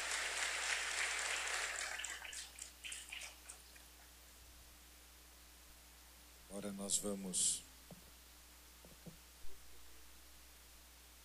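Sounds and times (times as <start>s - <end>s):
crowd clapping in a large room: 0.0s - 3.8s
speech: 6.5s - 7.7s.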